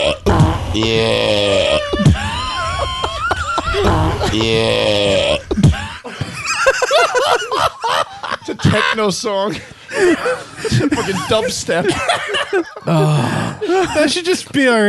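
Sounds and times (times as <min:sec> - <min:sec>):
recorded burp played back, stretched and warbling: 0:00.0 - 0:01.9, 0:03.8 - 0:05.9
speech: 0:00.7 - 0:02.2, 0:04.3 - 0:05.4, 0:08.7 - 0:14.8
laughter: 0:01.6 - 0:14.3.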